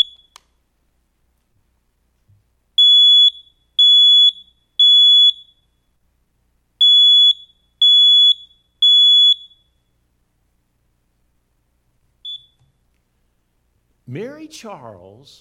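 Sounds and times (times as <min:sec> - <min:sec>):
smoke alarm test beeps: 0:00.0 - 0:00.4, 0:02.8 - 0:06.0, 0:06.8 - 0:10.0, 0:12.2 - 0:12.8
speech: 0:14.1 - 0:15.3.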